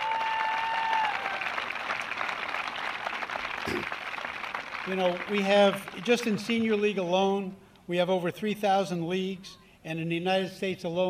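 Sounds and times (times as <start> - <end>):
crowd applauding: 0.0 - 7.0
speech: 4.8 - 11.0.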